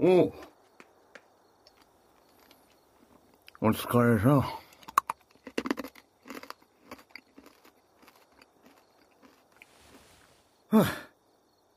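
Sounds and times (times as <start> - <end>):
speech: 0.0 - 0.5, 3.6 - 4.6, 10.7 - 11.1
hard candy being crunched and chewed: 1.6 - 3.6, 4.7 - 9.8
breathy burst: 9.6 - 11.1.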